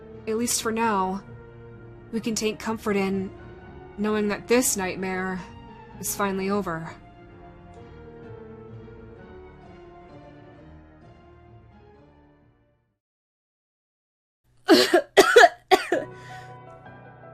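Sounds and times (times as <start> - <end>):
soft music: 0.0 - 13.0, 14.7 - 17.3
speech: 0.3 - 1.3, 2.1 - 3.4, 4.0 - 7.0
harsh raspy coughs spattering blood: 14.7 - 16.1.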